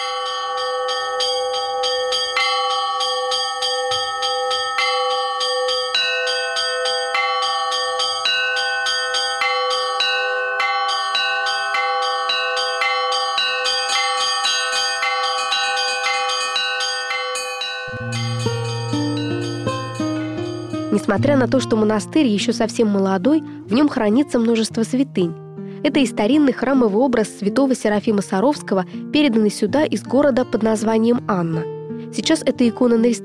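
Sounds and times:
monastery belfry bells ringing in a peal: 0:00.0 - 0:21.6
speech: 0:21.1 - 0:33.2.

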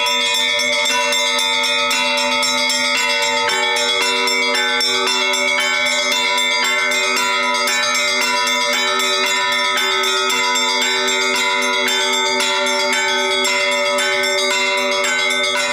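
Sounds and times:
church bells ringing in a full peal: 0:00.0 - 0:15.7.

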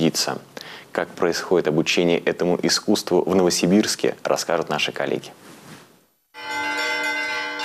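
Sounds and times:
speech: 0:00.1 - 0:05.5
church bells ringing at a bell-ringers' school in Novosibirsk: 0:06.4 - 0:07.6.

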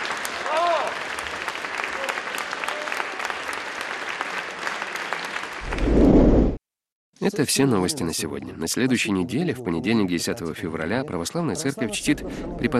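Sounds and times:
large audience applauding: 0:00.0 - 0:05.9
speech: 0:07.2 - 0:12.7.

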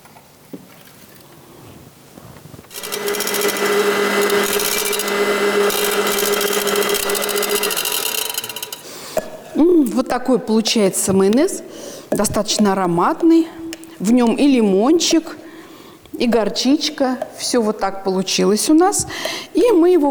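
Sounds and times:
blender whipping homemade mayonnaise: 0:02.7 - 0:09.0
speech: 0:10.1 - 0:15.4, 0:16.2 - 0:20.0.

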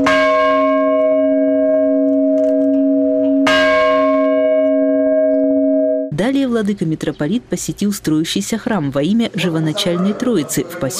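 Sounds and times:
old large deep bell ringing: 0:00.0 - 0:06.1
speech: 0:06.2 - 0:10.9.

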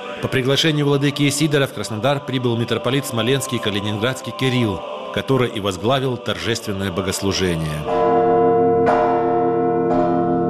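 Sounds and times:
speech: 0:00.2 - 0:08.2
single church bell ringing at a cathedral in Krasnodar: 0:07.6 - 0:10.4.

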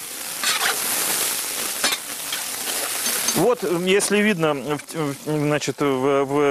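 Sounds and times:
onion and squid sizzling in a pan over a wood fire: 0:00.0 - 0:06.4
stirring in a pan: 0:00.3 - 0:05.5
speech: 0:03.4 - 0:06.4.

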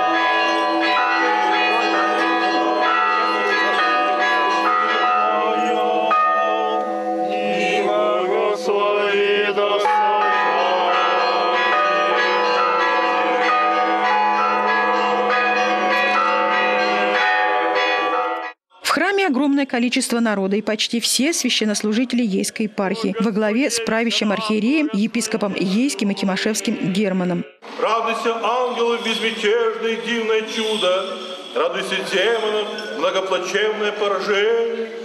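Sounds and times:
several church bells pealing: 0:00.0 - 0:18.6, 0:28.2 - 0:34.8
speech: 0:19.6 - 0:34.9.

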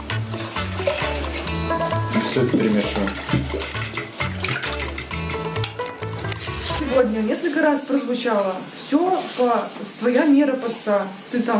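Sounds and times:
glass of water pouring into a hot cooking pan: 0:00.0 - 0:05.6
water hissing and sizzling in a hot cooking pan: 0:00.0 - 0:11.5
speech: 0:02.2 - 0:03.9, 0:06.9 - 0:11.5.

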